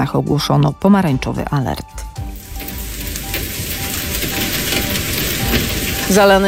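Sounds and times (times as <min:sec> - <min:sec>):
speech: 0:00.0 - 0:02.1, 0:06.1 - 0:06.4
low rumbling undertone: 0:02.0 - 0:06.4
heavy rain pouring down during a storm: 0:02.2 - 0:06.4.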